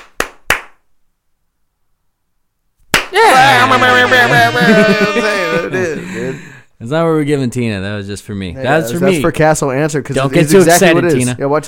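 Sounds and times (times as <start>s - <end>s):
hand slaps given as a rating: 0.0s - 0.8s, 2.8s - 3.2s
speech: 3.1s - 11.6s
laughter: 3.2s - 6.4s.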